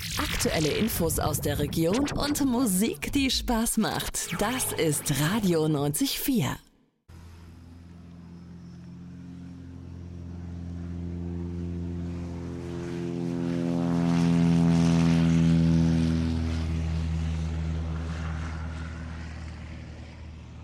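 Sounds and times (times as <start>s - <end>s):
speech: 0.2s - 6.7s
propeller aircraft droning in flight: 7.1s - 20.6s.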